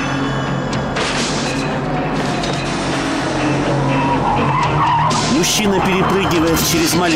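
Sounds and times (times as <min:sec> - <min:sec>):
car engine roaring in a chase: 0:00.0 - 0:07.1
car tires skidding and squealing: 0:02.1 - 0:07.1
speech: 0:05.4 - 0:07.1.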